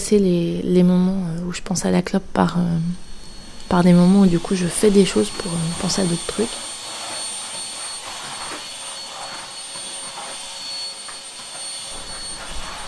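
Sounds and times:
speech: 0.1s - 3.1s, 3.7s - 6.7s
vacuum cleaner running: 2.4s - 12.8s.

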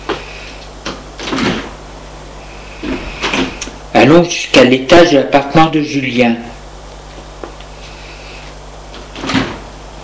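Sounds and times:
low mechanical hum: 0.0s - 10.0s
elevator door sliding open: 1.2s - 1.7s, 9.1s - 9.7s
speech: 4.0s - 6.5s.

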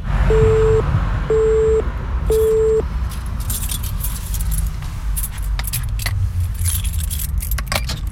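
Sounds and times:
steady low rumble: 0.0s - 7.4s
electronic beeps: 0.3s - 2.8s
metallic keys jangling in a prison door lock: 2.3s - 8.1s.

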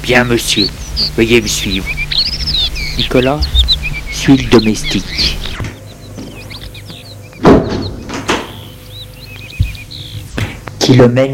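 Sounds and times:
small birds chirping outside: 0.0s - 11.3s
speech: 0.1s - 3.6s, 4.2s - 5.6s, 10.9s - 11.3s
house front door creaking open: 7.4s - 8.6s.

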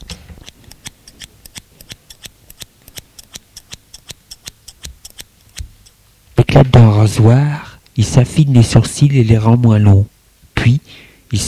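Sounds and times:
scissors cutting wet hair at the front of the head: 0.0s - 6.0s
speech: 6.6s - 11.4s.

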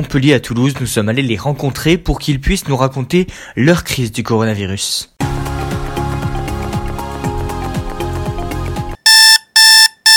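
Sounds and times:
speech: 0.0s - 5.1s
music playing: 5.2s - 9.0s
alarm clock ringing in sharp piercing electronic bursts: 9.0s - 10.1s.

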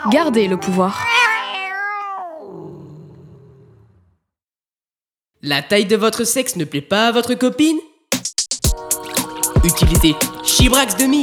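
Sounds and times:
speech: 0.0s - 1.1s, 5.4s - 7.9s, 9.6s - 11.2s
cat meowing: 0.6s - 3.2s.

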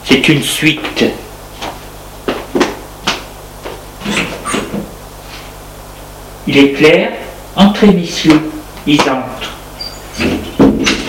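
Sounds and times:
faint steady hum: 0.0s - 11.0s
speech: 0.1s - 1.2s, 6.5s - 9.4s
door being opened: 4.0s - 4.9s.

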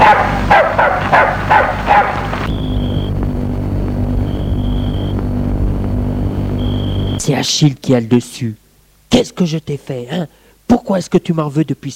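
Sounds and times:
dog barking sharply: 0.0s - 2.5s
low rumbling background: 0.0s - 7.2s
faint thin high-pitched tone: 4.1s - 5.2s, 5.9s - 7.3s
speech: 7.4s - 11.9s.

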